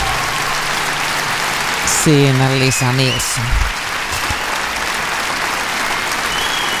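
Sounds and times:
large audience applause: 0.0s - 6.7s
speech: 2.0s - 3.7s.

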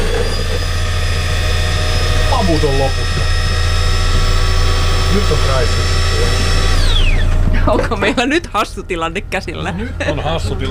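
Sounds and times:
coffee machine grinder whirring empty, out of beans: 0.0s - 7.9s
speech: 2.5s - 3.1s, 5.2s - 6.6s, 7.6s - 10.7s.

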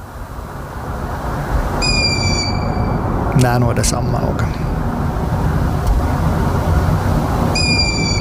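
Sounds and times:
steady low rumbling background noise: 0.0s - 8.1s
young long-eared owl begging call: 1.8s - 3.0s, 7.5s - 8.1s
speech: 3.4s - 4.6s.

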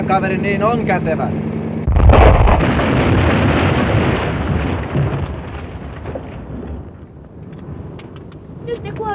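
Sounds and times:
speech: 0.1s - 2.9s, 8.8s - 9.1s
loud explosion with heavy low rumble: 1.9s - 6.9s.

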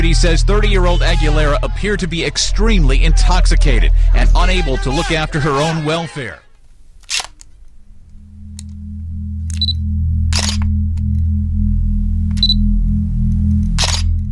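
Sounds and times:
low steady droning hum: 0.0s - 5.8s, 6.6s - 14.3s
speech: 0.1s - 6.4s
camera shutter clicks for a mugshot at a police station: 7.0s - 7.4s, 13.8s - 14.1s
brief electronic beeps: 9.3s - 11.0s, 12.2s - 14.1s.

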